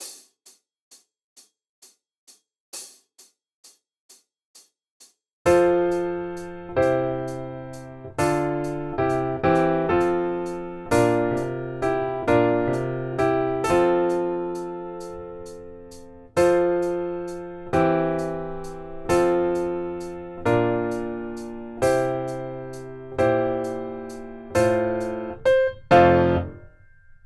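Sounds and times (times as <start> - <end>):
allegretto music at 66 bpm: 5.5 - 27.2.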